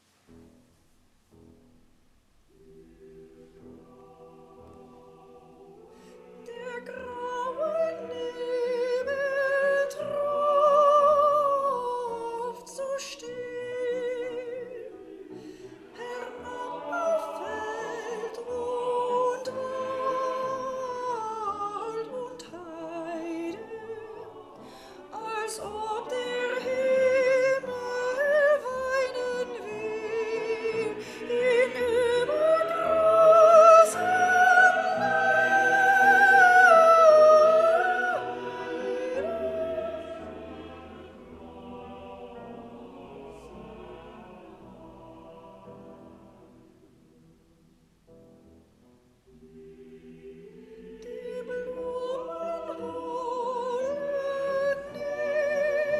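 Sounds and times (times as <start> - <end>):
soprano singing: 2.5 - 47.0, 49.3 - 55.9.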